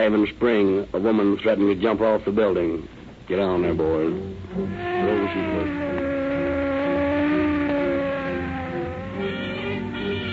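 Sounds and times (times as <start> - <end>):
speech: 0.0 - 6.0
police car engine whine speeding through city streets: 4.1 - 10.3.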